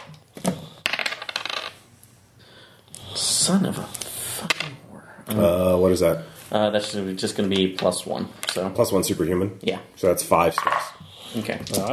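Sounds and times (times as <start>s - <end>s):
die rolled across a hard tabletop for a dodge roll in a game: 0.0s - 1.8s
speech: 3.5s - 4.0s, 5.3s - 11.9s.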